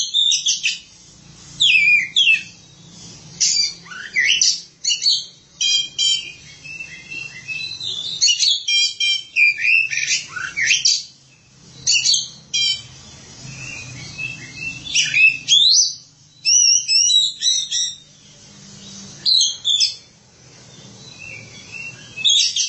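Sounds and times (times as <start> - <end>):
Oriental magpie-robin singing rapid chirps, trills and whistles: 0.0 - 22.6.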